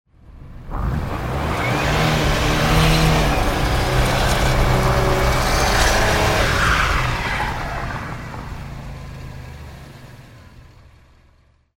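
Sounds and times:
car wheels spinning in mud: 0.7s - 8.6s.

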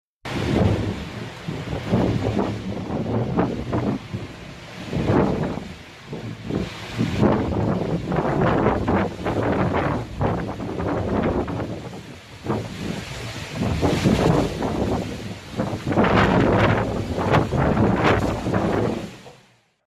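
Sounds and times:
rustling leaves of bending trees: 0.3s - 19.7s
strong wind: 0.3s - 19.8s.

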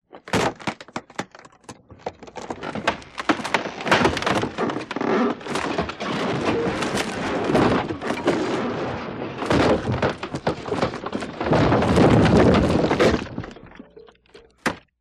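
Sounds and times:
wooden house creaking in an earthquake: 0.0s - 14.9s.

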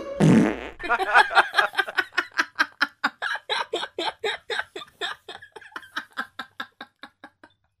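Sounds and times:
farting: 0.2s - 0.9s
laughter: 0.8s - 7.7s.

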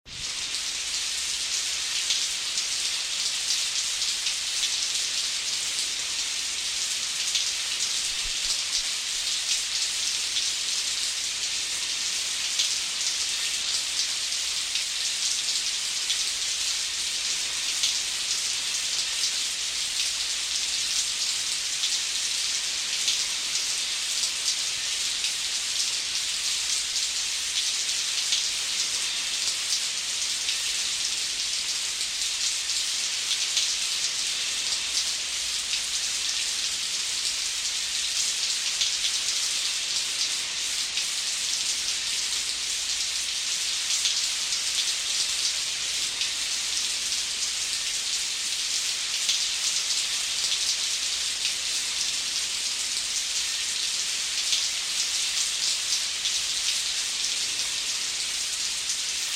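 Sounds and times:
rain on a hard surface: 0.0s - 59.3s.

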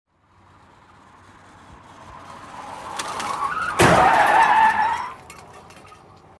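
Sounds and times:
vehicle running over an obstacle: 2.9s - 5.2s.

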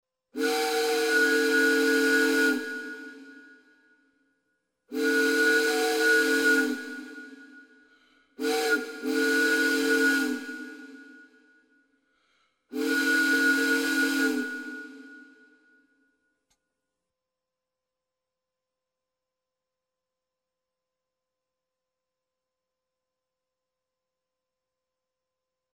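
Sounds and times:
steamship horn: 0.4s - 3.7s, 4.9s - 7.6s, 8.4s - 11.2s, 12.7s - 15.5s.

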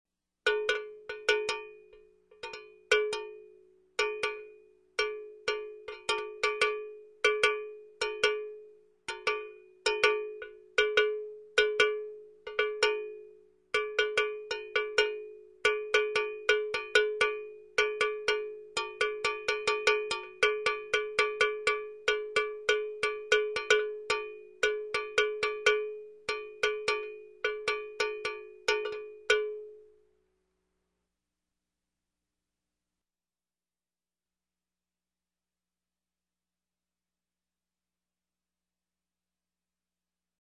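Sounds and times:
bell on a cow's neck ringing: 0.5s - 29.8s.

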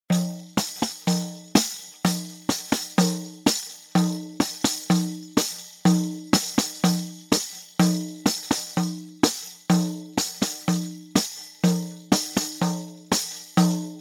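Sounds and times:
rhythmic beats on drum skin: 0.1s - 13.9s.

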